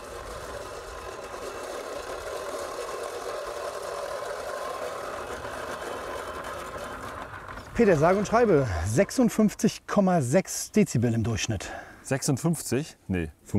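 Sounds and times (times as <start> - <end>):
motorless push reel lawn mower cutting grass: 0.0 - 9.5
speech: 7.8 - 13.5.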